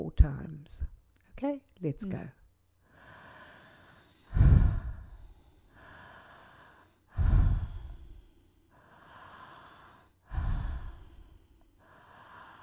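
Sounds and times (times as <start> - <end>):
speech: 0.0 - 2.4
deep breaths in a guided breathing exercise: 2.8 - 12.6.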